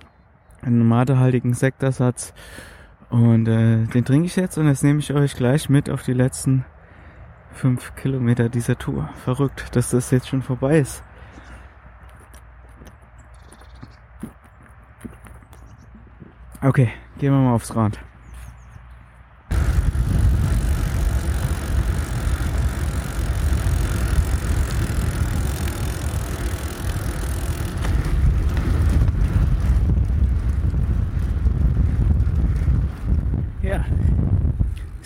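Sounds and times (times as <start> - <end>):
speech: 0.6 - 6.7, 7.5 - 11.1, 16.6 - 18.1
faint mechanical rolling of a bicycle: 19.5 - 33.5
strong wind buffeting the microphone while riding a bicycle: 19.5 - 35.0.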